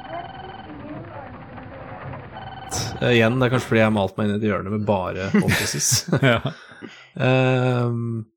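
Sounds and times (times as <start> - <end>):
telephone ringing in a video game: 0.0 - 3.7
speech: 3.0 - 8.3
laughter: 5.1 - 7.4.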